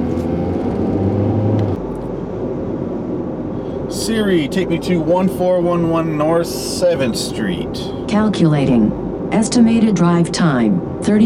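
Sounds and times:
car engines idling at a traffic light, some of them hot rods: 0:00.0 - 0:02.5, 0:03.6 - 0:10.6
speech: 0:04.1 - 0:11.2.

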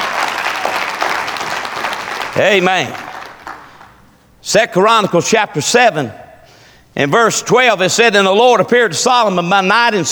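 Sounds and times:
audience applauding with hand clapping: 0:00.0 - 0:04.2
speech: 0:02.4 - 0:03.0, 0:04.4 - 0:06.2, 0:07.0 - 0:10.0.

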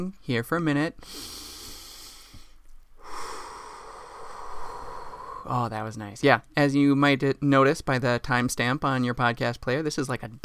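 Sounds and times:
speech: 0:00.0 - 0:01.4, 0:05.4 - 0:10.4
person taking a deep breath: 0:01.0 - 0:05.5.

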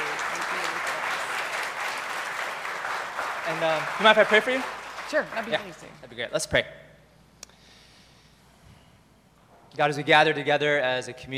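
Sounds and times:
church congregation applauding a speaker: 0:00.0 - 0:05.9
speech: 0:03.5 - 0:06.8, 0:09.7 - 0:11.3.

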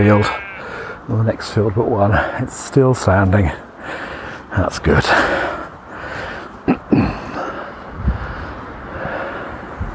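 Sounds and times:
speech: 0:00.0 - 0:00.4, 0:01.1 - 0:05.4
wind gusts buffeting with sharp low thumps: 0:00.0 - 0:09.9
wind blowing across an open field: 0:07.8 - 0:09.9.

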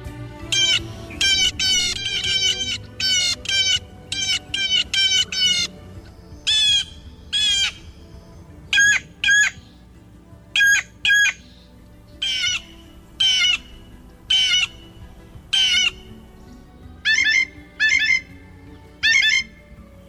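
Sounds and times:
blue jay harsh squawks and whistled notes: 0:00.5 - 0:09.9, 0:10.6 - 0:20.0
blue jay imitating a red-tailed hawk: 0:00.6 - 0:05.8, 0:06.5 - 0:07.9, 0:10.6 - 0:11.5, 0:12.2 - 0:14.9, 0:15.5 - 0:16.1, 0:17.0 - 0:19.5.

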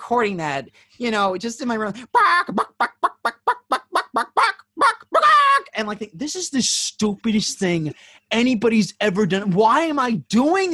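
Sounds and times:
speech: 0:00.1 - 0:03.1, 0:05.8 - 0:10.7
voice imitating chicken with clucking squawks: 0:02.1 - 0:05.7.

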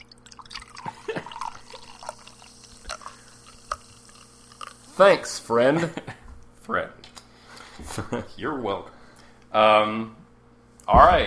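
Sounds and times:
drink poured into a glass in sputtering glugs: 0:00.0 - 0:05.0
faint steady hum: 0:00.0 - 0:11.2
speech: 0:05.0 - 0:06.1, 0:06.7 - 0:07.0, 0:08.0 - 0:10.2, 0:10.9 - 0:11.2.

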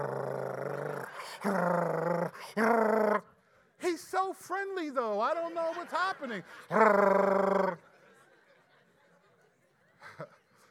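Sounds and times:
person imitating a dog's throaty growl: 0:00.0 - 0:03.3, 0:06.7 - 0:07.8
speech: 0:01.4 - 0:02.6, 0:06.2 - 0:07.1
laughter: 0:05.2 - 0:10.6.

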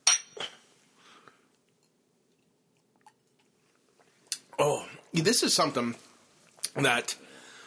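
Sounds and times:
glasses of whisky clinking in a toast: 0:00.0 - 0:00.6
speech: 0:04.6 - 0:06.0, 0:06.8 - 0:07.2.

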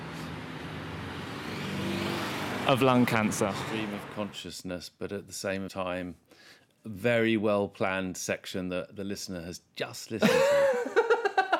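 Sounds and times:
road traffic with cars driving past: 0:00.0 - 0:04.4
speech: 0:02.7 - 0:10.6.

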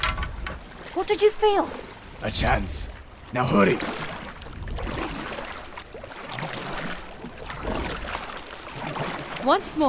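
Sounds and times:
water sloshing and splashing from a boat being rowed: 0:00.0 - 0:09.8
speech: 0:01.0 - 0:04.0, 0:09.4 - 0:09.8.

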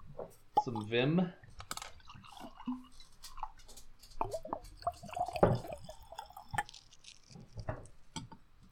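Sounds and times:
speech: 0:00.6 - 0:01.4, 0:02.7 - 0:02.9
scotch being poured into a glass: 0:01.8 - 0:03.6, 0:04.2 - 0:07.7.

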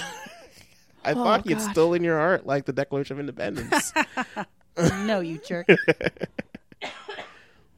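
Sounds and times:
speech: 0:01.0 - 0:07.0
laughter: 0:03.6 - 0:05.1, 0:05.7 - 0:06.8
harsh coughing: 0:04.8 - 0:05.3, 0:06.8 - 0:07.6.

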